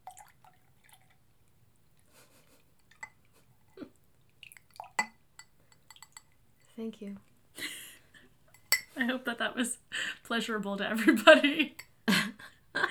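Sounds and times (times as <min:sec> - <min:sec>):
sangria trickling into a glass: 0:00.0 - 0:01.3, 0:04.3 - 0:06.3
glass clinking: 0:04.8 - 0:06.3, 0:08.5 - 0:08.9
speech: 0:06.8 - 0:07.3, 0:09.0 - 0:11.8.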